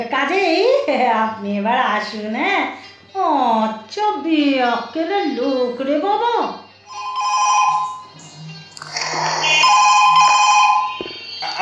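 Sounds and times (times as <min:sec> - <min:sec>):
speech: 0:00.0 - 0:07.0
telephone ringing with a melodic electronic ringtone: 0:06.9 - 0:08.3, 0:09.4 - 0:11.2.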